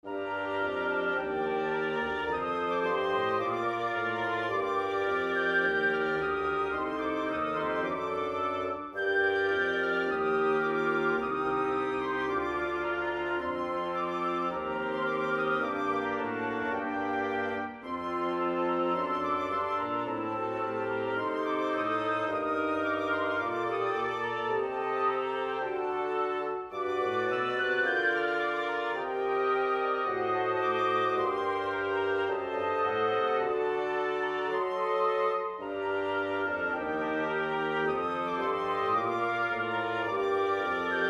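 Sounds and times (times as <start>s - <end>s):
wind quintet playing: 0.0s - 41.0s.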